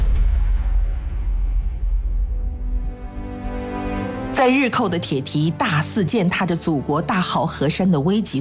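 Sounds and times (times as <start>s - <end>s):
train locomotive explosion blast with deep rumble: 0.0s - 3.2s
speech: 4.4s - 8.3s.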